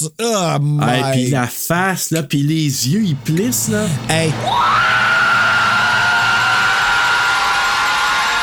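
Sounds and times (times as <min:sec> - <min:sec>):
speech: 0:00.0 - 0:05.1
woman's loud scream in film clip: 0:04.4 - 0:08.4.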